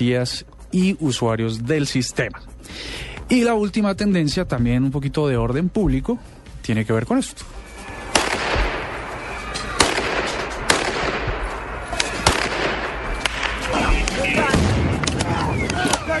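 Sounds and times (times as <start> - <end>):
speech: 0.0 - 7.6
crowd shouting and screaming in chaotic unrest in Ukraine: 7.7 - 10.6, 13.1 - 16.1
gunshots in riot in Ukraine: 7.9 - 16.1.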